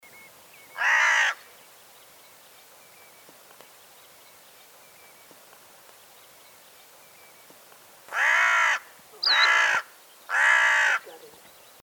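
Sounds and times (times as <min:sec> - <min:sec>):
Carrion crow Corvus corone giving harsh rasping caws: 0:00.8 - 0:01.4, 0:08.1 - 0:11.2.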